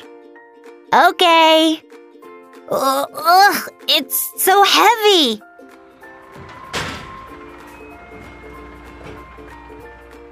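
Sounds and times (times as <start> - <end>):
speech: 0.9 - 1.9, 2.7 - 5.5
garbage truck engine rumble: 5.8 - 10.3
sharp metallic bang: 6.0 - 10.3.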